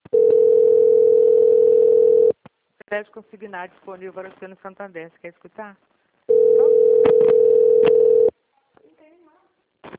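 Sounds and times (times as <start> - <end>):
telephone dial tone while placing a call: 0.1 - 2.3, 6.3 - 8.3
speech: 2.9 - 6.0.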